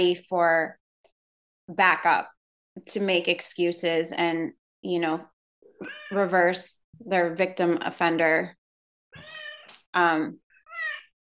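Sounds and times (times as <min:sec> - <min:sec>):
speech: 0:00.0 - 0:00.8, 0:01.7 - 0:08.6, 0:10.0 - 0:10.4
cat meowing: 0:05.8 - 0:06.2, 0:09.2 - 0:09.7, 0:10.6 - 0:11.1.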